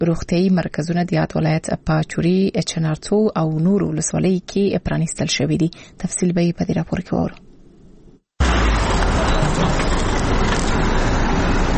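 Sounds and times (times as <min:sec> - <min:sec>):
speech: 0:00.0 - 0:07.4
vehicles loaded with medical supplies and medicines engine rumble in Uruzgan: 0:08.4 - 0:11.7.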